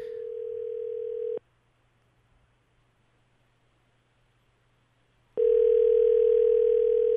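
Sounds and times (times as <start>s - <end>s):
telephone ringback tone heard on the caller's end: 0.0s - 1.4s, 5.4s - 7.1s.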